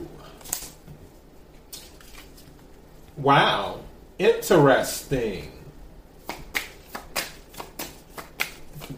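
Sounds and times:
cards being handled and shuffled: 0.4 - 0.8, 1.5 - 2.7, 6.2 - 8.9
speech: 3.2 - 5.6.

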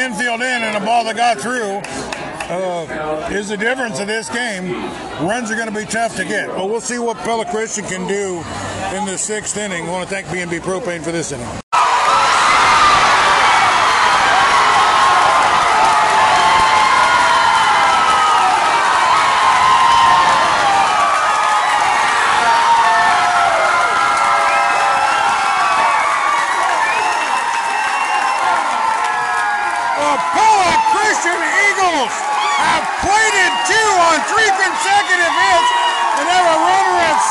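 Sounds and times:
speech: 0.0 - 11.6
large baseball crowd roaring and cheering wildly at a ballgame: 11.8 - 37.2
shouting and whooping with scattered high-pitched voices: 11.8 - 37.2.

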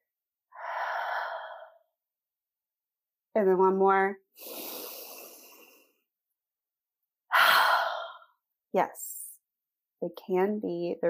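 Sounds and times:
deep inhaled breath during a guided calming exercise: 0.6 - 1.8, 4.4 - 6.0, 7.3 - 8.4
speech: 3.4 - 4.7, 8.7 - 9.1, 10.0 - 11.0.

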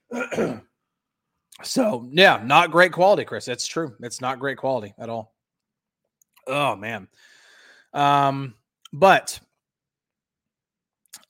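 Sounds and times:
harsh throat-clearing cough from food stuck in throat: 0.0 - 0.8
speech: 0.3 - 0.6, 1.6 - 5.3, 6.5 - 7.3, 7.9 - 9.5.

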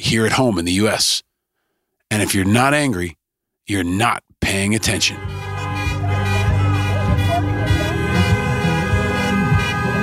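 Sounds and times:
speech: 0.1 - 1.3, 2.1 - 5.5
engines of gridlocked vehicles rumbling: 4.9 - 10.0
horns from gridlocked vehicles at a street protest: 4.9 - 10.0
sirens at a street protest: 5.2 - 10.0
crowd voices at a street protest: 5.3 - 10.0.

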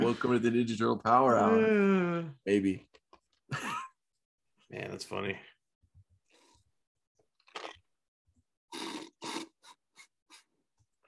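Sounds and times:
speech: 0.1 - 3.8, 4.7 - 5.5
sips and gulps: 7.3 - 7.9, 8.7 - 11.0
slurping from a drink: 7.4 - 7.9, 8.7 - 11.0.

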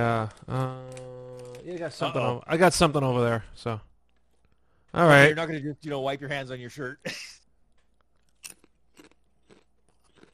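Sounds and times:
speech: 0.0 - 0.8, 1.6 - 3.9, 4.9 - 7.4
sesame oil and salt flavored potato chips being chewed: 7.8 - 10.3.

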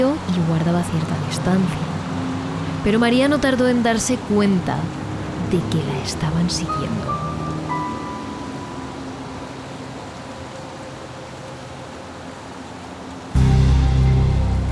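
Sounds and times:
speech: 0.0 - 2.0, 2.8 - 7.2
steady rain falling: 0.0 - 14.7
deep rumbling undertone: 13.4 - 14.7.

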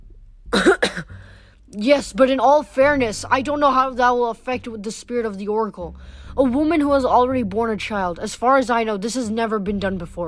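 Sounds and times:
person coughing: 0.5 - 1.4
speech: 1.8 - 10.2.

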